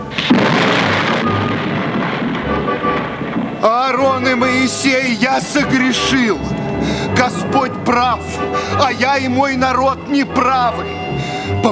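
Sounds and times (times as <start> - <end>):
heavy rain: 0.0 - 5.7, 6.3 - 8.9
low thunder rumbling: 0.0 - 10.8
pelting hail: 0.0 - 11.7
speech: 3.6 - 11.7.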